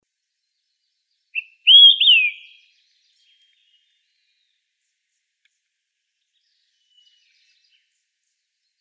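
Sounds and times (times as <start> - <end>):
olive-sided flycatcher three-part whistled song: 1.4 - 2.6.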